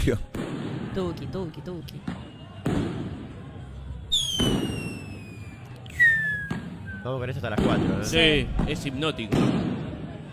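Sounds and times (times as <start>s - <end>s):
speech: 0.0s - 0.4s, 1.0s - 2.9s, 7.0s - 9.7s
firecrackers popping with rumbling echoes: 1.8s - 6.9s, 7.5s - 10.3s
descending whistling streaks: 4.8s - 7.1s.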